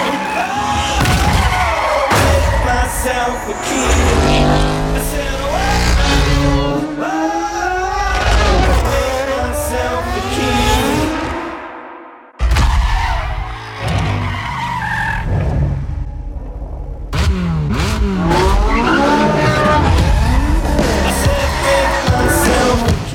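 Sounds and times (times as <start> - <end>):
racing car tire squeals and skids in a racing video game: 0.0 - 6.8, 12.4 - 15.9, 18.1 - 22.9
racing car engines roaring in a racing video game: 0.0 - 23.1.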